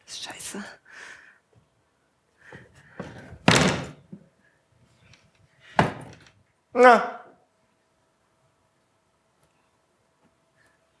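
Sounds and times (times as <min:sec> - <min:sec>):
speech: 0:00.3 - 0:00.8, 0:06.8 - 0:07.2
lighter knocks and thuds: 0:03.0 - 0:04.0, 0:05.8 - 0:06.3
door slamming shut: 0:03.4 - 0:04.1.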